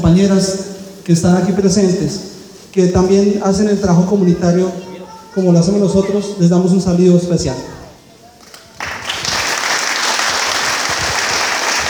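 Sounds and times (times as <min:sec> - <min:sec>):
speech: 0:00.1 - 0:07.8
audience applause at a community event on peace-building work: 0:08.4 - 0:11.8.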